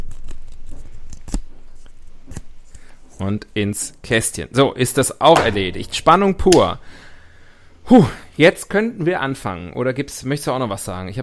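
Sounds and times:
paper being folded by hand: 0:00.0 - 0:03.2
speech: 0:03.2 - 0:07.1, 0:07.9 - 0:11.2.

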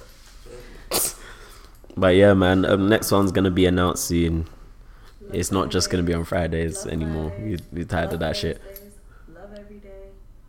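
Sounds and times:
sharp cough: 0:00.9 - 0:01.4
speech: 0:02.0 - 0:04.6, 0:05.3 - 0:08.8.

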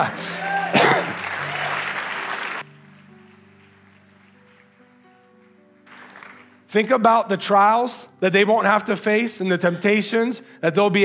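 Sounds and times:
speech: 0:00.0 - 0:00.3, 0:06.7 - 0:11.0
audience applause: 0:00.0 - 0:04.3, 0:05.9 - 0:06.6.

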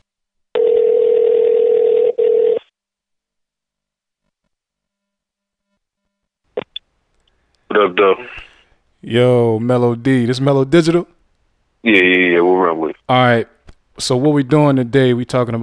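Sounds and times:
telephone dial tone: 0:00.6 - 0:02.7
voice speaking over a telephone line: 0:07.7 - 0:08.5
speech: 0:07.8 - 0:08.4, 0:09.0 - 0:11.2, 0:11.8 - 0:15.6.

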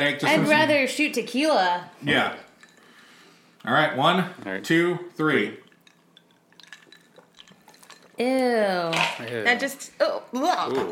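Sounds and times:
speech: 0:00.0 - 0:02.4, 0:03.6 - 0:05.6, 0:08.2 - 0:10.8
sipping and slurping liquid from a can: 0:05.6 - 0:08.2.

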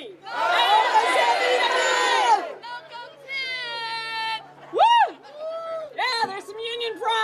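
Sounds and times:
scattered shouts and calls: 0:00.2 - 0:04.0
large crowd yelling out their union names: 0:00.2 - 0:07.2.

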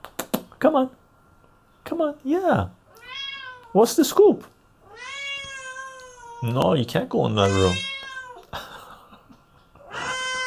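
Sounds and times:
speech: 0:00.6 - 0:01.0, 0:01.9 - 0:02.8, 0:03.7 - 0:05.1, 0:06.4 - 0:07.9
cat meowing and yowling: 0:02.9 - 0:03.8, 0:04.8 - 0:06.5, 0:07.4 - 0:08.5, 0:09.8 - 0:10.4.

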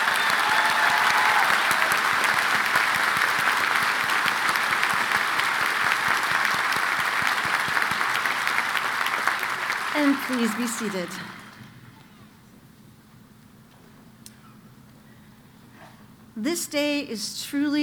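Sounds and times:
large audience applauding at a graduation ceremony: 0:00.0 - 0:11.9
speech: 0:10.3 - 0:11.4, 0:16.6 - 0:17.8.

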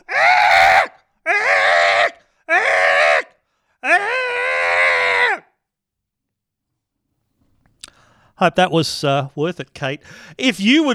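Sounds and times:
person imitating cockatoo screech: 0:00.0 - 0:05.5
speech: 0:08.4 - 0:10.9.

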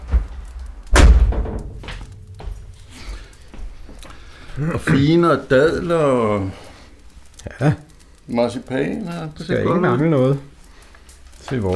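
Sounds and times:
brief rattle of a door: 0:00.0 - 0:03.5
faint shuffling: 0:00.0 - 0:11.7
door swinging shut with a solid thud: 0:00.9 - 0:03.3
speech: 0:04.6 - 0:06.6, 0:07.4 - 0:10.5, 0:11.5 - 0:11.7.

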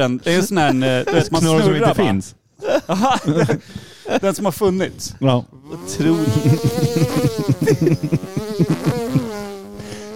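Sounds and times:
speech: 0:00.0 - 0:09.0
laughter: 0:02.6 - 0:03.7, 0:05.7 - 0:09.4
voice imitating a leaf blower with a nasal buzzing drone: 0:05.6 - 0:10.1.

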